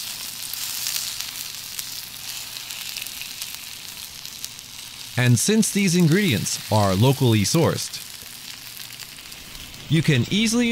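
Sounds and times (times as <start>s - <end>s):
meat sizzling on a flame-heated magma stone plate cooking yakiniku in Japan: 0.0s - 10.6s
speech: 5.2s - 8.1s, 9.9s - 10.6s.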